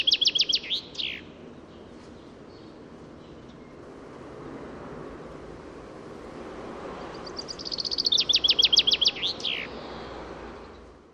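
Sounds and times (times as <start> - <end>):
common chaffinch Fringilla coelebs song: 0.0 - 4.0, 6.8 - 11.0.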